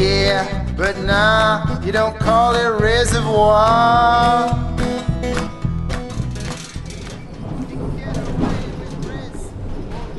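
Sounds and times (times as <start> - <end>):
speech: 0.0 - 5.4
tram in motion rumbling and rattling, heard from inside: 5.3 - 10.1.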